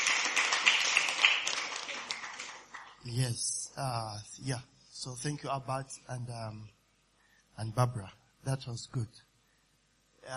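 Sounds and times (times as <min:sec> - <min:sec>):
crowd in a large room clapping: 0:00.0 - 0:03.1
speech: 0:03.1 - 0:06.8, 0:07.6 - 0:09.3.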